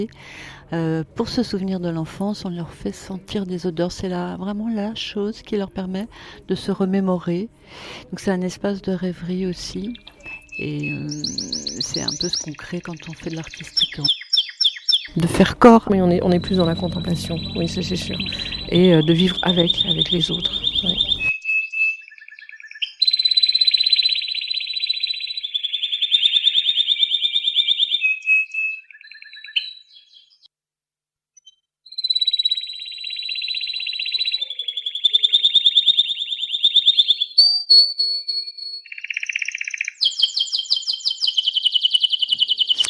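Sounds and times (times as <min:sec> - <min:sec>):
speech: 0:00.0 - 0:14.2, 0:15.1 - 0:21.1
birdsong in a shared garden: 0:09.9 - 0:15.2, 0:16.3 - 0:30.5, 0:31.4 - 0:42.8.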